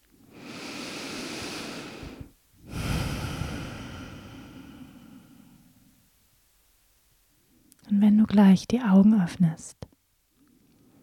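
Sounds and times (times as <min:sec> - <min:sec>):
deep breathing during a guided meditation: 0:00.2 - 0:06.1
speech: 0:08.0 - 0:09.9.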